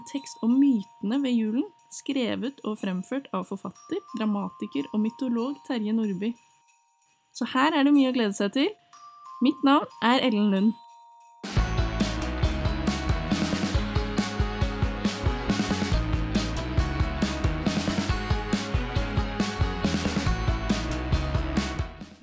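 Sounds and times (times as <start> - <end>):
speech: 0.1 - 6.5, 7.4 - 10.8
energetic pop band music with drums bass and layered instruments: 11.5 - 22.2.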